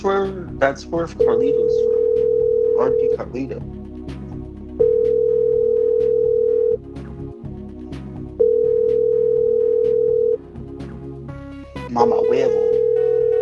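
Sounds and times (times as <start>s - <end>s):
speech: 0.0s - 3.8s, 12.0s - 12.7s
telephone ringback tone on an outgoing call to Puerto Rico: 1.2s - 3.2s, 4.8s - 6.8s, 8.4s - 10.4s, 12.4s - 13.4s.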